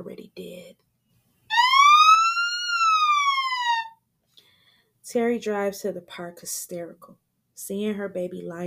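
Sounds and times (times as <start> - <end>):
ambulance siren wail: 1.5 - 4.0
speech: 5.1 - 8.6.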